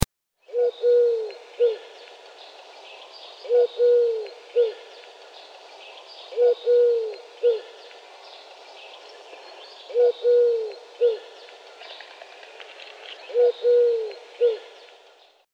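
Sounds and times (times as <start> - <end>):
Eurasian collared dove courtship call: 3.4 - 5.4, 6.0 - 12.5, 13.2 - 14.8.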